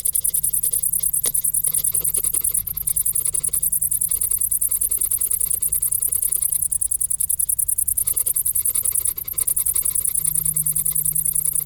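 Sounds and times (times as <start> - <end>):
cricket chirping in a fast steady very high pulsed trill: 0.0 - 11.6.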